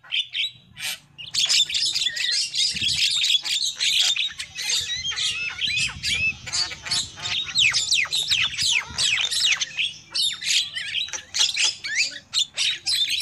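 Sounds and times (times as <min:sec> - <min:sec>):
lovebird lure call chattering with shrill squawks: 0:00.0 - 0:13.2.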